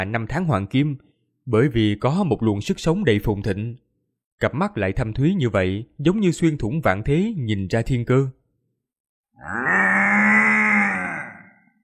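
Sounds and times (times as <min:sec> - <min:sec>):
speech: 0:00.0 - 0:03.8, 0:04.4 - 0:08.4, 0:09.4 - 0:09.8
large golden-backed buffalo bellowing: 0:09.4 - 0:11.8.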